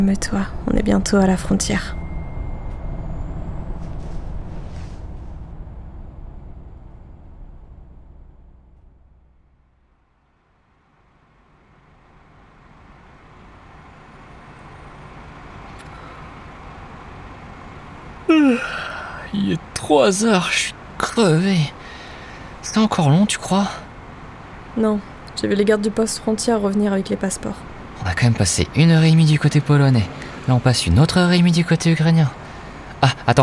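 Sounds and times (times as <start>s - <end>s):
speech: 0.0s - 2.0s, 19.9s - 21.8s, 22.6s - 23.8s, 24.8s - 32.4s, 33.0s - 33.4s
large bus engine rumbling at night: 0.0s - 33.4s
vehicle approaching: 0.0s - 33.4s
bus air brakes hissing: 3.6s - 5.5s.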